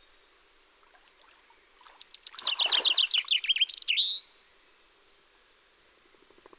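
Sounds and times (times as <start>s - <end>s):
Common chaffinch Fringilla coelebs song: 1.5s - 6.5s.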